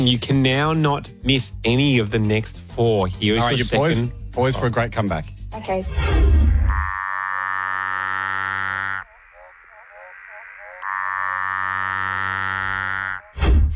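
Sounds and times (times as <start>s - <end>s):
speech: 0.0s - 6.4s
Litoria tree frog buzzing harmonic calls: 6.5s - 13.4s.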